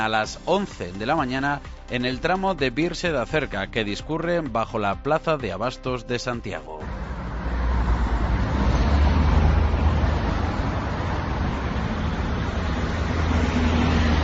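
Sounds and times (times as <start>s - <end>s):
speech: 0.0s - 6.8s
buses rumbling past: 6.8s - 14.2s
city street traffic roar: 6.8s - 14.2s.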